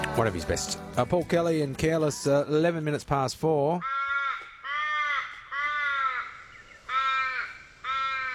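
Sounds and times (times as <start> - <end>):
speech: 0.2 - 3.9
crow cawing: 3.8 - 8.3.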